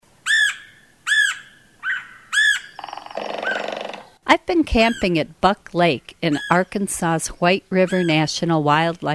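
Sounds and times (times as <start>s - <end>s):
red-headed woodpecker giving harsh arched squawking calls and buzzy rattling churr: 0.2s - 4.2s, 4.8s - 5.2s, 6.2s - 6.7s, 7.8s - 8.4s
speech: 4.4s - 9.1s.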